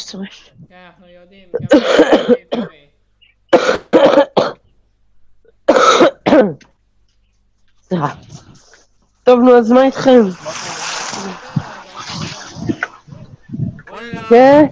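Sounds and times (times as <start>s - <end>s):
speech: 0.1s - 2.9s, 7.9s - 8.4s, 9.3s - 11.4s, 14.3s - 14.7s
harsh rasping coughing: 1.5s - 2.8s, 3.5s - 4.6s, 5.7s - 6.6s.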